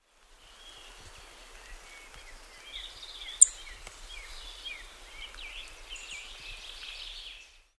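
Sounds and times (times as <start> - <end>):
song thrush singing: 0.0 - 7.7.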